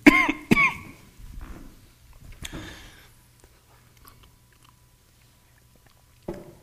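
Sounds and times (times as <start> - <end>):
person with a cough drop in the mouth coughing: 0.0 - 1.0.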